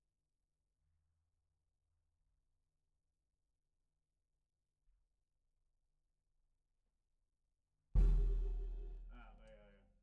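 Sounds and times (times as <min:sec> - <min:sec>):
snare drum recorded from the bottom: 0:08.0 - 0:09.0.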